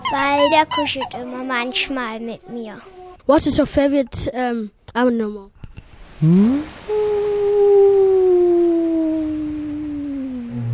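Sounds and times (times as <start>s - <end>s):
speech: 0.1s - 5.6s, 6.2s - 7.1s
whale call: 6.2s - 10.7s.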